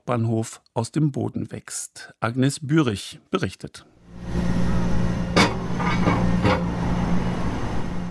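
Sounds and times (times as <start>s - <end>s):
speech: 0.1s - 4.6s
low rumble of construction machinery: 4.1s - 8.0s
construction banging impacts in a busy city: 5.3s - 6.7s.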